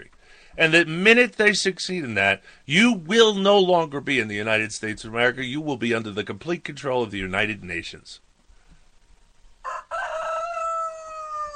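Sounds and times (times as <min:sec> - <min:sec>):
speech: 0:00.0 - 0:08.2
rooster crowing loudly: 0:09.6 - 0:11.5.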